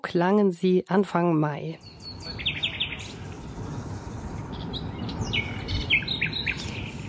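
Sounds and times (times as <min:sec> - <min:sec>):
speech: 0:00.0 - 0:02.0
nightingales singing: 0:01.8 - 0:03.3, 0:04.4 - 0:07.0
steady low rumble of city traffic or a passing train: 0:01.8 - 0:07.0.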